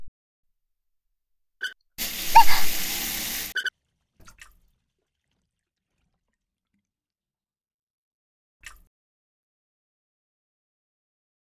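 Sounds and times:
hot water poured over someone being washed: 2.0 - 3.7.

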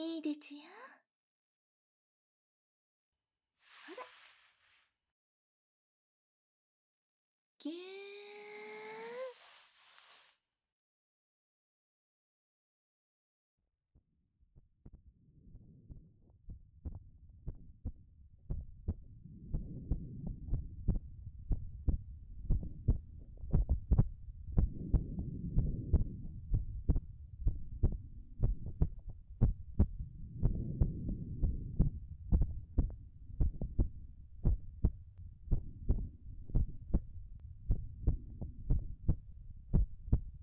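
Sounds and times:
speech: 0.0 - 1.0, 7.6 - 8.0
heartbeat: 14.6 - 40.4
low rumble: 15.1 - 40.4.

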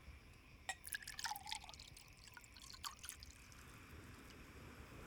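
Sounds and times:
glassware tapping and clinking: 0.7 - 1.9
orange juice pouring into a glass: 0.7 - 4.3.

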